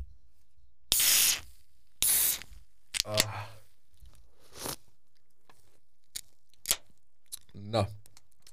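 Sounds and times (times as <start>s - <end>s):
beer can being cracked open with a sharp hiss: 0.9s - 3.2s
speech: 7.7s - 8.0s.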